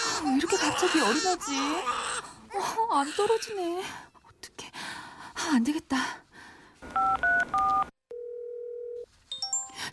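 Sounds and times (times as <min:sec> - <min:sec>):
speech: 0:00.2 - 0:04.1, 0:05.5 - 0:06.2
telephone keypad dialing tones: 0:06.9 - 0:09.1
steady low electronic telephone ring tone: 0:07.0 - 0:09.7.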